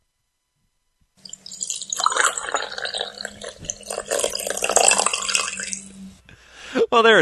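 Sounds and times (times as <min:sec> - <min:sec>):
coffee pouring into a cup: 0:01.2 - 0:06.2
speech: 0:06.9 - 0:07.2.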